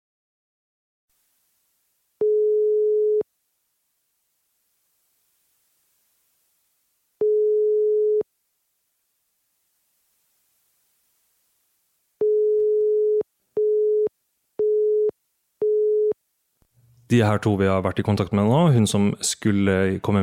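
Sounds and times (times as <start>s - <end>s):
telephone ringback tone: 2.2s - 3.2s, 7.2s - 8.2s, 12.2s - 16.2s
telephone busy beeps: 12.2s - 16.2s
speech: 17.1s - 20.2s.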